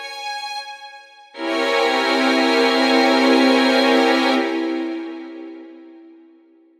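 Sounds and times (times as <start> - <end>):
seventh flat thirteen chord: 1.4 - 6.2.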